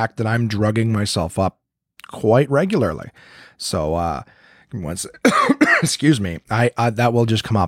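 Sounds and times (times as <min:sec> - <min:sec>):
speech: 0:00.0 - 0:07.6
person with a sore throat and congested sinuses coughing from allergies: 0:05.2 - 0:06.0
person with a sore throat clearing throat: 0:05.2 - 0:06.0.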